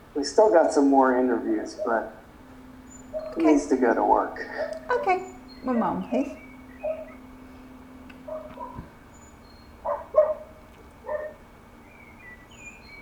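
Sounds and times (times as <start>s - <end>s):
quiet steady background hum: 0.0s - 13.0s
speech: 0.2s - 2.2s, 3.4s - 6.4s
dog barking with short yelps: 1.6s - 2.2s, 3.1s - 3.8s, 4.4s - 5.4s, 6.8s - 7.2s, 8.2s - 9.0s, 9.8s - 11.4s.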